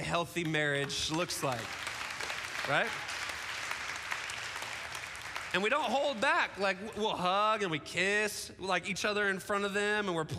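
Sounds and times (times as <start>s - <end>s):
small audience of four people clapping: 0.0s - 6.9s
speech: 0.1s - 1.8s, 2.6s - 3.1s, 5.5s - 10.3s.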